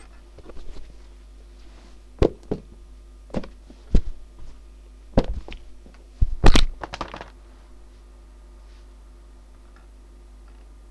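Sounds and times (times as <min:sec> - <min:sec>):
thuds: 0:02.2 - 0:04.6, 0:05.2 - 0:07.3.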